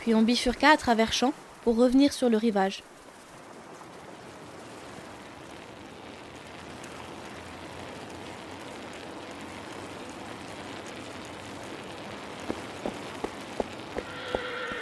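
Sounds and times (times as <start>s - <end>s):
speech: 0.0s - 2.9s
steady rain-like hiss: 0.0s - 14.7s
pony stamping: 12.5s - 14.7s
pony high tonal whinny: 14.0s - 14.7s.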